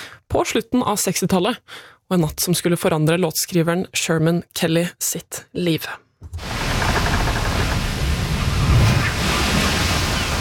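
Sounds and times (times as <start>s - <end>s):
speech: 0.3s - 6.6s
sea waves on the Caribbean Sea between St. Thomas and St. Croix: 6.4s - 10.3s.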